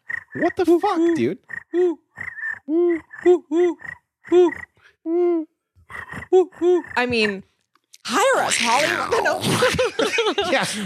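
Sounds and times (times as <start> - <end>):
person imitating crickets with voiced croaky chirping bursts: 0.3 - 7.4, 8.1 - 9.7
speech: 0.4 - 2.0, 2.7 - 5.5, 6.3 - 7.5, 8.1 - 10.8
laughter: 8.7 - 10.8.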